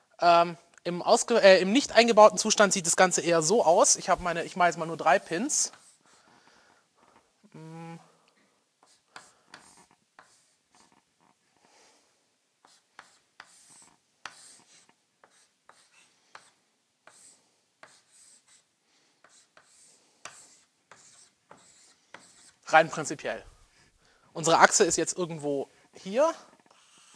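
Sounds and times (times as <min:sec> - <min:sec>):
speech: 0:00.2 - 0:05.8, 0:22.8 - 0:23.5, 0:24.4 - 0:26.5
pen scratching and scribbling across paper drawing a diagram: 0:05.5 - 0:06.4, 0:08.8 - 0:11.4, 0:12.6 - 0:23.0, 0:26.4 - 0:27.1.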